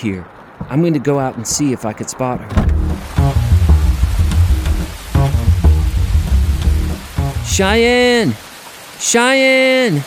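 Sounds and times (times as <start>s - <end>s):
speech: 0.0s - 3.5s, 7.5s - 10.0s
heavy rain: 2.5s - 9.1s.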